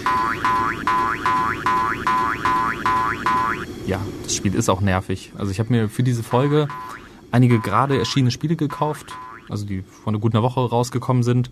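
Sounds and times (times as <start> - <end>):
bright electronic boing-like video game sound effect: 0.0 - 3.7, 6.7 - 9.5
constant low buzzing background: 0.0 - 4.8, 5.5 - 9.8
speech: 3.9 - 11.4.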